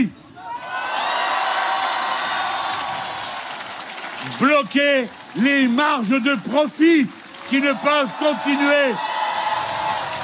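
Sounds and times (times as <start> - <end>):
rally crowd cheering and whooping: 0.4 - 4.0, 7.3 - 10.2
rally audience applauding: 0.8 - 10.2
speech: 4.4 - 9.1.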